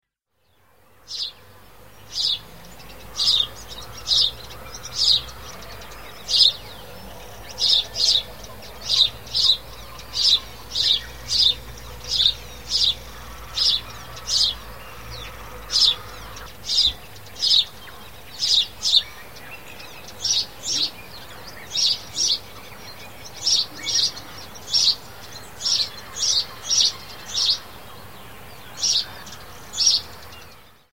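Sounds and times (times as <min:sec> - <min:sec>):
house sparrow calls: 0:00.7 - 0:30.9.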